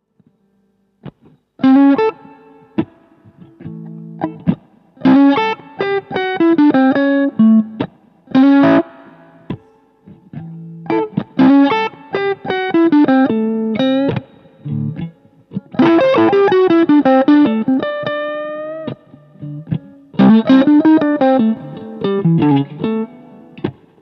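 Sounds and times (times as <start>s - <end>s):
blue Strat electric guitar: 1.0s - 23.9s.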